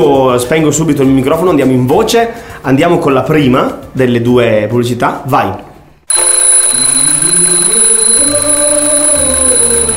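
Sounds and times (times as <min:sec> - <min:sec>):
speech: 0:00.0 - 0:06.2
alarm clock ringing: 0:06.1 - 0:09.9.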